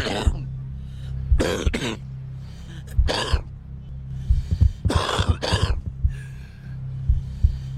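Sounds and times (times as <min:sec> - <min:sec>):
steady low hum: 0:00.0 - 0:07.7
deep rasping smoker's cough: 0:01.4 - 0:02.0, 0:03.1 - 0:03.4, 0:04.9 - 0:05.8
throat clearing: 0:01.4 - 0:02.0, 0:03.0 - 0:03.4, 0:04.9 - 0:05.8.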